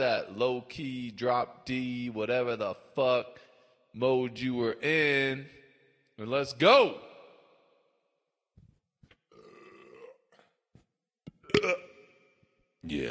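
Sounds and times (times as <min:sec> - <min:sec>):
speech: 0:00.0 - 0:05.6, 0:06.2 - 0:07.1, 0:12.8 - 0:13.0
long rasping belch: 0:09.3 - 0:10.6, 0:11.4 - 0:12.2
loud guttural burp: 0:09.3 - 0:10.6, 0:11.4 - 0:12.1.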